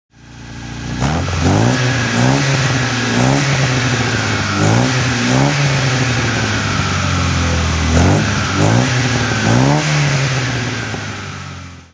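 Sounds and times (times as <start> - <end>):
car engine throttle: 0.3 - 11.9.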